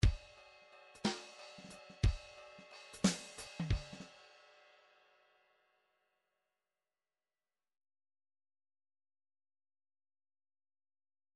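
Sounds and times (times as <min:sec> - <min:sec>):
MIDI drum fill in three four time: 0:03.0 - 0:04.1.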